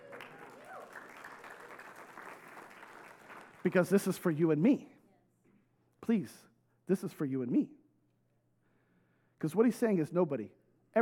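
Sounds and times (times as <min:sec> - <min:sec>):
scattered crowd cheers and whoops: 0:00.0 - 0:01.7
crowd clapping: 0:00.0 - 0:04.2
speech: 0:03.6 - 0:04.9, 0:06.1 - 0:07.8, 0:09.4 - 0:11.0.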